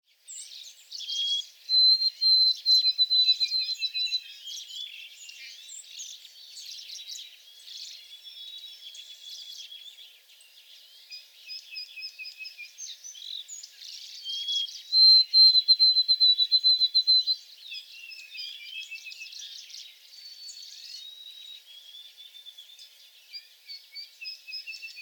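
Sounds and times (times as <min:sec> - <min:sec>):
White-throated Sparrow songs: 0:00.0 - 0:25.0.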